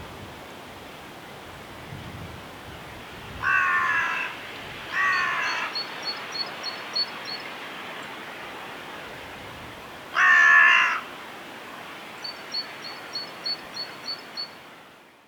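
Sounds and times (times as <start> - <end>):
carrion crow Corvus corone cawing: 3.4 - 4.4, 4.9 - 5.8, 10.1 - 11.1.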